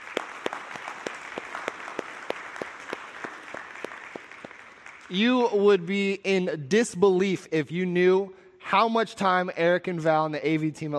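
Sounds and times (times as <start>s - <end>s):
audience applause: 0.0s - 5.2s
speech: 5.1s - 10.9s.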